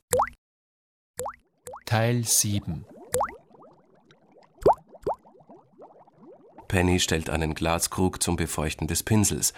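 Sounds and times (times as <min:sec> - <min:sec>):
water bubbling up from a tub and a well: 0:01.2 - 0:08.0
speech: 0:01.9 - 0:03.3, 0:06.7 - 0:09.5.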